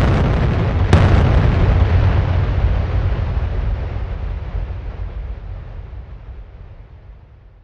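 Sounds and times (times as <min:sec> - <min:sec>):
two towers exploding, detonated by remote: 0:00.0 - 0:07.6.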